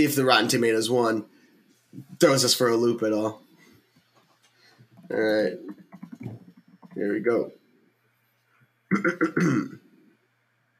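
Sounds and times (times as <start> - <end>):
speech: 0.0 - 3.5, 5.1 - 6.4, 7.0 - 7.6, 8.9 - 9.8
person clearing throat: 8.9 - 9.9.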